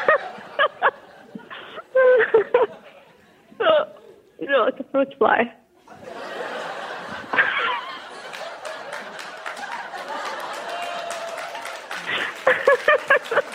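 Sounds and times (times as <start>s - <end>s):
live audience laughing: 0.0s - 3.6s, 5.8s - 13.5s
speech: 4.9s - 5.6s
live audience clapping: 6.6s - 13.5s.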